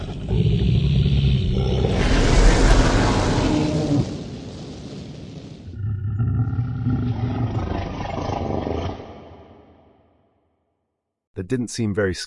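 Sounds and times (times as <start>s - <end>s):
fierce growling roar: 0.0s - 4.9s, 5.6s - 9.6s
speech: 11.5s - 12.2s.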